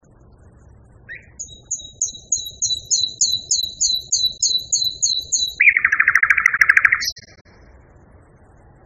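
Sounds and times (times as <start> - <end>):
common nightingale high double whistles: 1.1 - 7.4.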